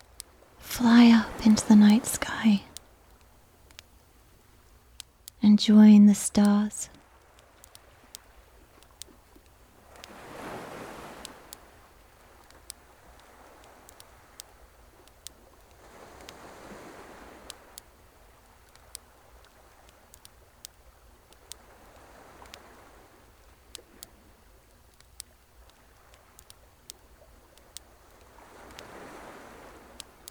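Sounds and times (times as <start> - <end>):
bonfire crackling at night: 0.0 - 30.2
gentle sea waves rolling in: 0.0 - 30.2
speech: 0.8 - 2.7, 5.4 - 7.0.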